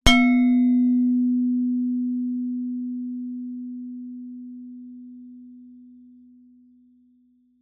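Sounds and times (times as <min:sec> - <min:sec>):
gender gamelan single mallet hit mid low: 0:00.0 - 0:01.9.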